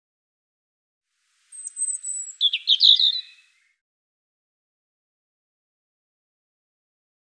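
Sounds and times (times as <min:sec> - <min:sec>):
European robin singing: 0:01.4 - 0:03.8.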